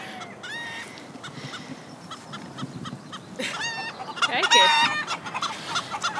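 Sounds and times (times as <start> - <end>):
chickens clucking and squawking: 0.0 - 6.1.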